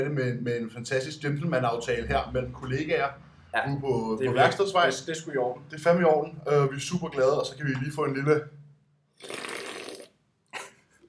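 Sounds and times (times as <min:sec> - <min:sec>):
speech: 0:00.0 - 0:08.6
slurping a hot morning drink: 0:09.2 - 0:10.2.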